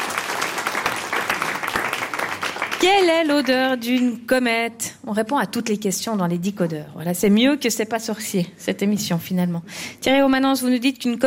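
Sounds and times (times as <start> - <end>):
television studio audience applause: 0.0 - 3.2
speech: 2.8 - 11.2.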